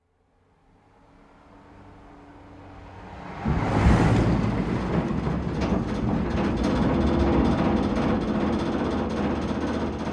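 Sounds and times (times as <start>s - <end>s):
car driving over wooden bridge: 3.2s - 10.1s.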